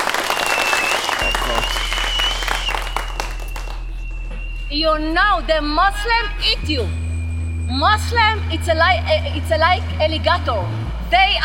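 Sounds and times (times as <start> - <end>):
crowd applauding: 0.0 - 4.5
low hum: 1.2 - 11.4
speech: 4.7 - 7.0, 7.7 - 11.4.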